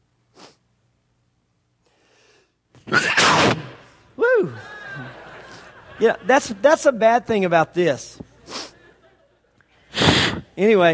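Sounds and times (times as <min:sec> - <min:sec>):
short sharp intake of breath: 0:00.3 - 0:00.6, 0:01.8 - 0:02.6, 0:08.4 - 0:08.9, 0:09.8 - 0:10.6
loud sneeze: 0:02.8 - 0:04.0, 0:09.9 - 0:10.5
laughter: 0:04.3 - 0:07.0, 0:08.4 - 0:09.8
speech: 0:06.0 - 0:08.2, 0:10.6 - 0:10.9.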